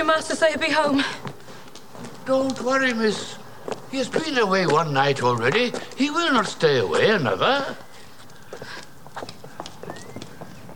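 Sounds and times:
speech: 0:00.0 - 0:01.3, 0:02.0 - 0:07.8
horse hooves walking through soft muddy ground down a hill: 0:00.4 - 0:10.7.

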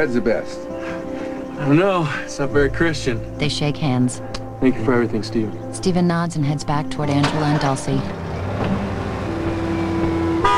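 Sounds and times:
speech: 0:00.0 - 0:08.9
pickup truck engine rumbling while backing out of a driveway: 0:06.6 - 0:10.5
pickup truck horn toot: 0:10.4 - 0:10.5.

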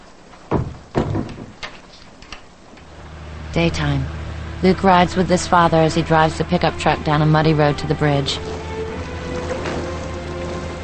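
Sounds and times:
bedroom door closing thuds: 0:00.5 - 0:01.7
speech: 0:03.6 - 0:08.6.

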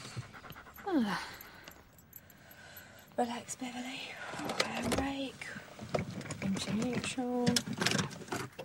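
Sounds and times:
dog panting as it crosses in front of a car at test centre gates: 0:00.0 - 0:02.3
speech: 0:00.9 - 0:01.4, 0:03.2 - 0:08.6.

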